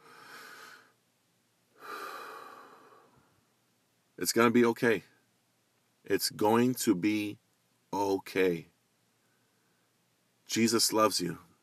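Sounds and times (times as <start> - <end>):
deep breath in and out: 0.0 - 1.0, 1.8 - 3.4
speech: 4.2 - 5.1, 6.1 - 7.4, 8.0 - 8.7, 10.5 - 11.5.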